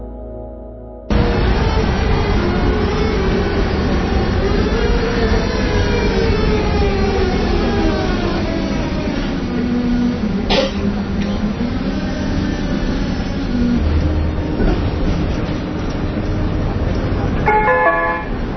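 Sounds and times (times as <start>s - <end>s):
Prague tram clanging a short tonal warning: 1.1s - 11.8s, 14.2s - 18.5s
Prague tram wheels rattling on the rails: 1.1s - 18.5s.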